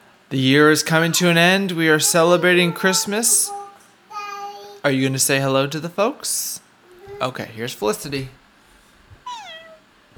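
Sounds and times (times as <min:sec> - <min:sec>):
speech: 0:00.3 - 0:03.6, 0:04.8 - 0:06.6, 0:07.2 - 0:08.4
cat meowing: 0:02.4 - 0:03.8, 0:09.2 - 0:09.9.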